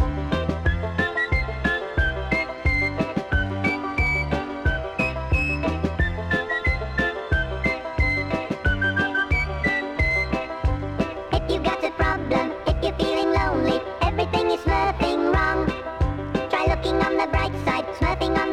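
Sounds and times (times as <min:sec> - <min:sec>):
busy upbeat musical backing with steady rhythmic percussion: 0:00.0 - 0:18.4
bright whistled melody in a song: 0:00.3 - 0:11.1.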